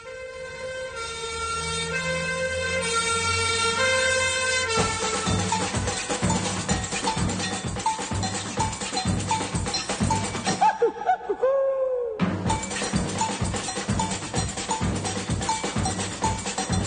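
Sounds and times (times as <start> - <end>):
fire siren wailing to call firefighters: 0.0 - 5.5
clattering rhythmic din: 4.2 - 11.3, 12.2 - 16.8
loud rapid clanging: 4.8 - 10.6, 12.5 - 16.8
laughter: 10.4 - 12.2.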